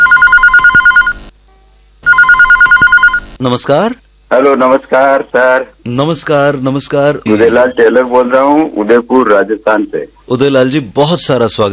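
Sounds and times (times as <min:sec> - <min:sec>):
telephone ringing in rapid electronic trills: 0:00.0 - 0:01.2, 0:02.0 - 0:03.3
speech: 0:03.4 - 0:11.7.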